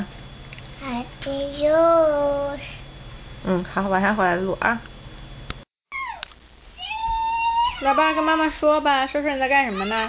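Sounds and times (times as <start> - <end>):
speech: 1.2 - 2.7, 3.4 - 4.9, 7.8 - 10.0
pet cat meowing while being shaken by a child at home: 6.8 - 8.2.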